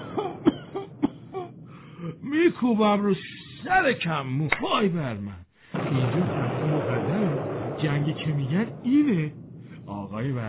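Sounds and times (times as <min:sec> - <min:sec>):
person coughing from breathing in dust: 0:00.0 - 0:02.2
speech: 0:02.4 - 0:06.6, 0:07.8 - 0:10.4.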